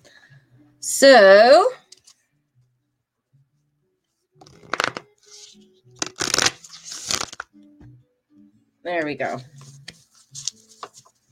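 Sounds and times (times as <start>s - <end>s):
speech: 1.0s - 1.8s, 8.9s - 9.6s
deck of affirmation cards being shuffled: 4.4s - 7.5s, 9.3s - 11.1s.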